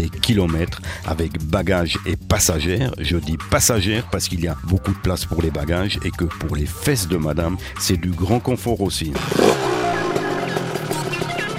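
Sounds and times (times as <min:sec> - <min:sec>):
speech: 0:00.0 - 0:09.8
GT touring motorcycle setting off on a test ride from Saint-Gall toward Germany: 0:09.2 - 0:11.5.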